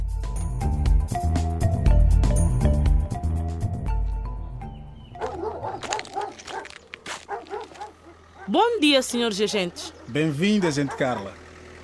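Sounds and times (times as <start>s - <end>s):
music: 0.0s - 5.4s
police dogs whimpering: 5.1s - 8.7s, 9.8s - 11.4s
police dogs of a canine unit barking at a farm on the outskirts of a town: 5.1s - 11.5s
speech: 8.5s - 11.4s.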